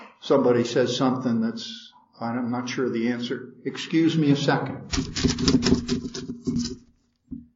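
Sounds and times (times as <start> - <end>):
speech: 0.3 - 6.9
crinkly paper rustling while being handled: 4.9 - 7.2.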